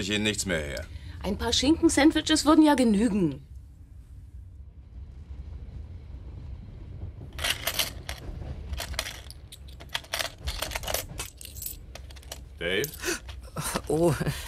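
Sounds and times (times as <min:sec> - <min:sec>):
speech: 0:00.0 - 0:03.5, 0:12.6 - 0:13.2, 0:13.9 - 0:14.4
low steady hum: 0:00.0 - 0:14.4
coins being counted in a cash register till: 0:07.4 - 0:14.2.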